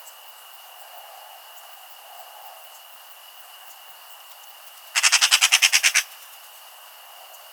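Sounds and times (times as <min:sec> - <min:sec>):
Eurasian magpie chattering: 0:05.0 - 0:06.1.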